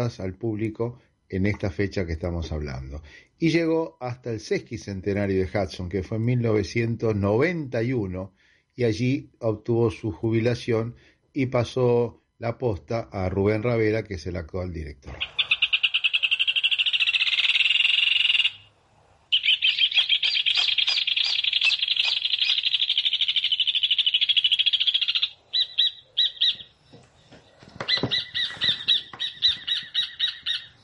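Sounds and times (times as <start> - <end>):
speech: 0.0 - 15.4
rufous hornero singing ringing trills: 15.2 - 18.7, 19.3 - 30.8.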